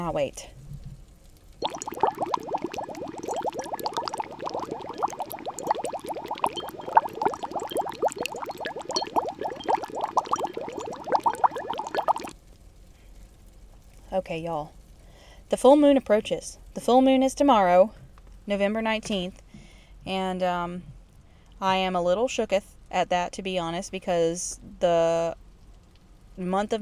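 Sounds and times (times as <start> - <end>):
speech: 0.0 - 0.6, 14.2 - 14.8, 15.5 - 19.4, 20.0 - 20.9, 21.6 - 25.4, 26.4 - 26.8
bubbling cauldron sound effect: 1.6 - 12.3.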